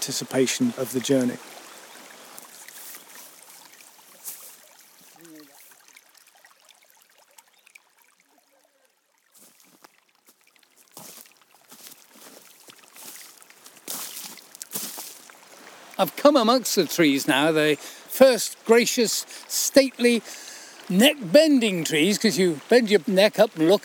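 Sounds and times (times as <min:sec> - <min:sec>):
speech: 0:00.0 - 0:01.7, 0:16.1 - 0:23.8
distant rushing stream: 0:00.0 - 0:08.7, 0:09.3 - 0:23.8
footsteps: 0:02.4 - 0:05.2, 0:09.4 - 0:17.0.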